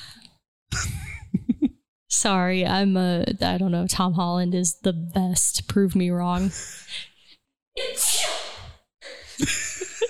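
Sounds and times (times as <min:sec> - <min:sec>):
speech: 0:02.2 - 0:07.1, 0:09.4 - 0:09.7
loud sneeze: 0:07.8 - 0:08.8.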